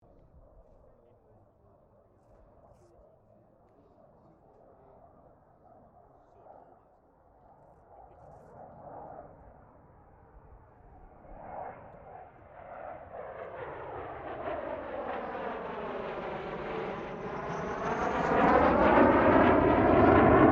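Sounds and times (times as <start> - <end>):
CA-27 Sabre jet aircraft passing: 8.6 - 20.5.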